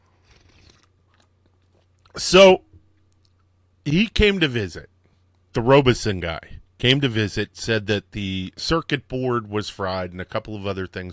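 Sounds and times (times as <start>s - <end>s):
low steady hum: 0.0s - 11.1s
slurping sip of coffee: 0.2s - 0.9s
speech: 2.2s - 2.6s, 3.9s - 4.9s, 5.5s - 11.1s.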